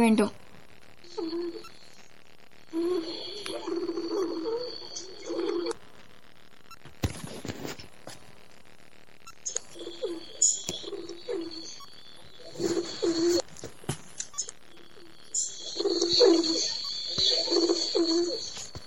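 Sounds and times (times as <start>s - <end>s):
speech: 0.0s - 0.4s
steady bright chirping or hiss: 1.0s - 5.8s, 9.2s - 13.5s, 14.2s - 18.8s
pigeons cooing: 2.7s - 5.7s, 9.7s - 13.4s, 15.6s - 18.6s.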